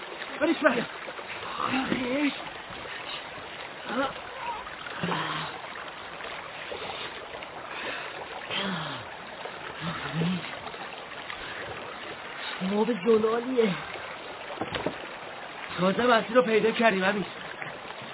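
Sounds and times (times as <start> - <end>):
flowing river water: 0.0 - 18.1
speech: 0.4 - 2.6, 3.9 - 4.3, 12.7 - 13.9, 15.8 - 17.4
low vocal sounds: 3.8 - 5.8, 7.8 - 10.7.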